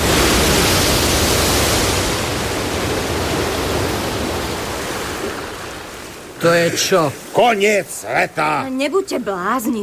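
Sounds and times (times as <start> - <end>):
rushing floodwater roar: 0.0 - 9.8
speech: 6.4 - 9.8.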